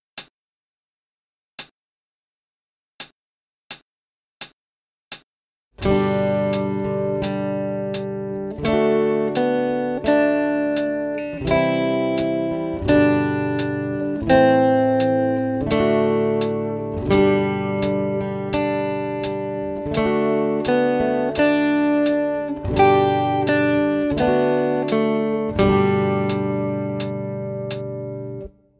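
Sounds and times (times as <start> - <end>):
fast guitar playing on three strings: 5.8 - 28.5.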